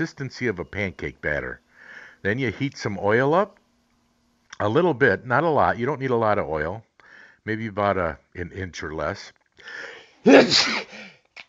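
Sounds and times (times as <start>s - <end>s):
speech: 0.0s - 1.6s, 2.2s - 3.6s, 4.6s - 11.1s
breathy intake before sneeze: 1.7s - 2.2s, 9.6s - 11.2s
person sniffing: 9.7s - 11.1s
person sneezing: 10.3s - 11.1s.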